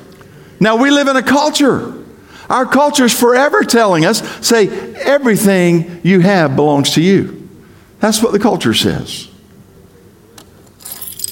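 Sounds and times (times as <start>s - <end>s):
speech: 0.6s - 7.4s, 8.0s - 9.3s
house keys jangling: 10.6s - 11.3s.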